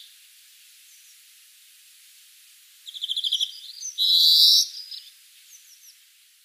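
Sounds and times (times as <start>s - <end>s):
European greenfinch Chloris chloris twittering: 2.9s - 5.1s.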